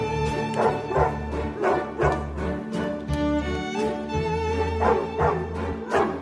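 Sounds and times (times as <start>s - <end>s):
classical orchestral music with sustained strings: 0.0s - 6.2s
dogs barking: 0.5s - 2.4s, 4.6s - 6.2s.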